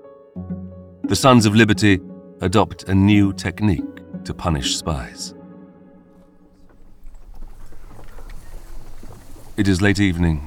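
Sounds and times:
speech: 1.1 - 5.4, 9.6 - 10.4
horse hooves clip-clopping on a bumpy street: 6.3 - 10.4
horse-drawn cart wheels rumbling and rattling on a rutted street: 6.5 - 10.4.

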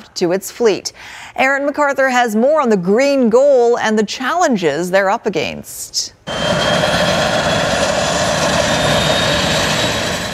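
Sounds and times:
speech: 0.2 - 7.4
floatplane engine droning with whine and rumble: 6.3 - 10.3.

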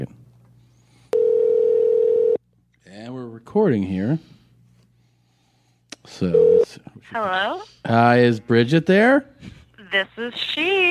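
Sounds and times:
faint hum: 0.0 - 10.8
telephone dial tone before a call: 1.2 - 2.4, 6.4 - 6.6
speech: 3.0 - 4.4, 6.0 - 10.8.

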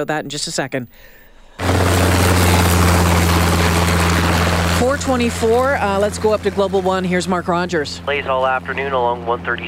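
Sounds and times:
speech: 0.0 - 3.2, 4.8 - 9.6
helicopter rotor thrum with low hum and whooshing chop: 1.6 - 9.6.

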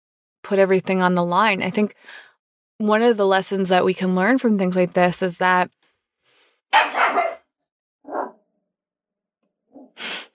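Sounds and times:
speech: 0.5 - 5.8, 6.7 - 7.1
dog barking: 6.7 - 8.4.

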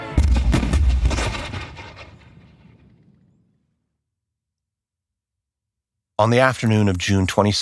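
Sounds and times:
heavy cannon blasts from a British warship: 0.0 - 3.6
speech: 6.2 - 7.6.

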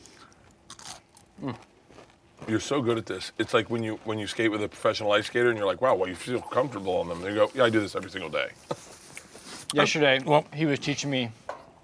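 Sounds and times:
crunchy bite into a fried onion ring: 0.0 - 2.5
crackly chewing of a fried onion ring: 0.0 - 10.3
speech: 1.4 - 1.7, 2.5 - 8.8, 9.7 - 11.4.

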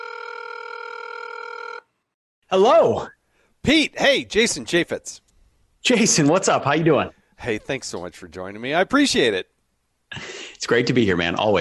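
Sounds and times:
electronic telephone ringing tone for an outgoing call: 0.0 - 1.9
speech: 2.5 - 5.2, 5.8 - 9.5, 10.1 - 11.5.

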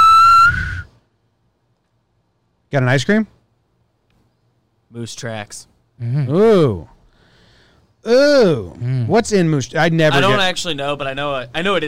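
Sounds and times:
sharp high whistle blast: 0.0 - 0.9
speech: 2.7 - 3.4, 4.9 - 7.0, 8.0 - 11.8.

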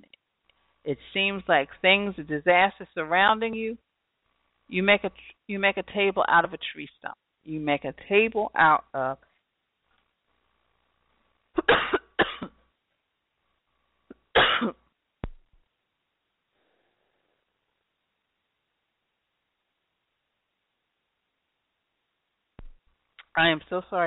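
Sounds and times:
speech: 0.9 - 3.9, 4.7 - 9.3, 14.6 - 14.8, 23.4 - 24.0
person coughing harshly: 11.6 - 12.6, 14.3 - 14.8.

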